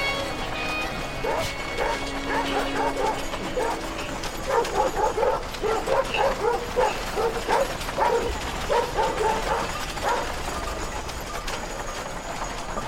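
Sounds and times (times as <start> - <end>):
clattering mechanical noise from a moving cart: 0.0 - 12.8
steady rumble of rolling cart wheels: 0.0 - 12.8
several dogs barking while chasing a cart: 1.1 - 10.8.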